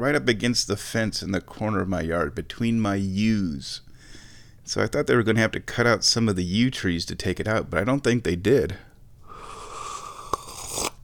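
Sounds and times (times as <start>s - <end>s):
speech: 0.0s - 3.9s, 4.7s - 8.9s
person slurping very hot tea: 9.3s - 11.0s.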